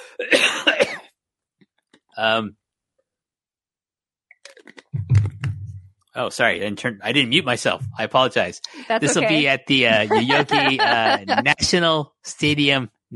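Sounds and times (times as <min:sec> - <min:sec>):
low rumbling throat clearing: 0:00.0 - 0:01.0
person coughing: 0:00.0 - 0:01.1, 0:08.7 - 0:11.5
speech: 0:00.2 - 0:00.7, 0:02.2 - 0:02.6, 0:06.2 - 0:13.1
laughter: 0:06.5 - 0:12.8.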